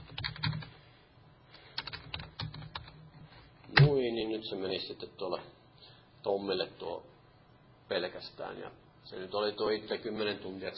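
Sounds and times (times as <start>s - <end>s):
typing on a computer keyboard: 0.0s - 0.7s, 1.8s - 3.0s
speech: 4.4s - 5.6s, 6.2s - 7.1s, 7.9s - 10.7s.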